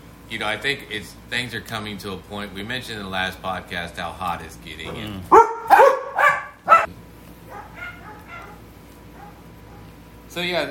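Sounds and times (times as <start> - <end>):
speech: 0.3 - 5.5, 10.4 - 10.6
dog giving short high yipping barks: 5.3 - 6.9, 7.5 - 9.9.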